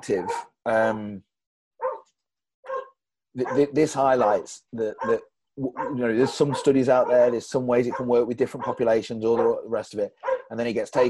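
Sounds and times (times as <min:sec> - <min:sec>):
speech: 0:00.0 - 0:01.3, 0:03.4 - 0:11.0
dog barking at a parcel delivery: 0:00.1 - 0:01.0, 0:01.8 - 0:02.1, 0:02.7 - 0:04.4, 0:05.0 - 0:09.6, 0:10.2 - 0:11.0.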